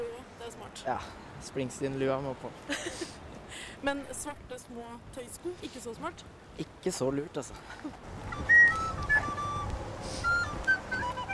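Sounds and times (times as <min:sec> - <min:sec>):
speech: 0:00.7 - 0:08.5
faint thin flute notes: 0:08.1 - 0:11.3.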